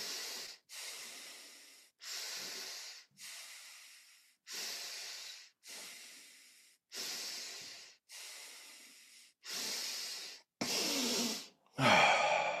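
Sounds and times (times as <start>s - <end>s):
deep breathwork breaths: 0.0s - 10.5s, 11.7s - 12.5s
person sighing: 11.8s - 12.5s.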